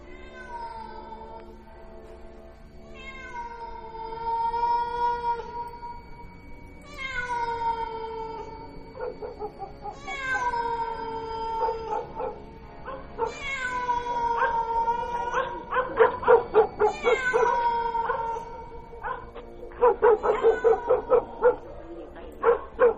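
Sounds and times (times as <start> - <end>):
wild cat meowing near a guava tree: 0.0 - 1.2, 2.9 - 5.8, 6.9 - 8.7, 9.3 - 12.4, 13.1 - 21.7.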